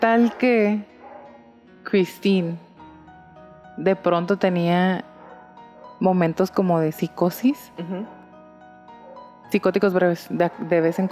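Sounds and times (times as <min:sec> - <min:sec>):
speech: 0:00.0 - 0:00.9, 0:01.8 - 0:02.6, 0:03.8 - 0:05.1, 0:06.0 - 0:08.2, 0:09.5 - 0:11.1
dogs barking: 0:00.0 - 0:01.6, 0:05.1 - 0:06.1, 0:09.0 - 0:09.4, 0:10.1 - 0:11.1.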